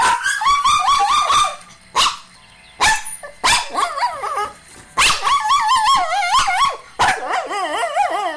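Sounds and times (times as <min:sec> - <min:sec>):
Shih Tzu shelter dog whining and barking in a crate: 0:00.0 - 0:08.3.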